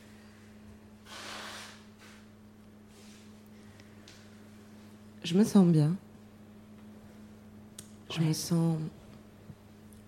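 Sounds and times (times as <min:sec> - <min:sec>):
steady low electrical hum: 0:00.0 - 0:10.0
person blowing nose: 0:01.0 - 0:02.2
speech: 0:05.2 - 0:06.1, 0:08.2 - 0:09.0.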